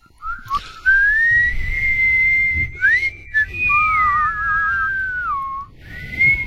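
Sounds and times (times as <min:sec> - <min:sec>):
low rumble: 0:00.0 - 0:06.4
person whistling a tune: 0:00.0 - 0:06.4.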